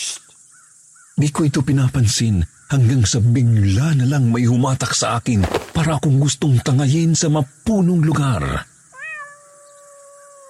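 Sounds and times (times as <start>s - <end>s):
speech: 1.2s - 8.7s
cat meowing: 9.0s - 10.4s.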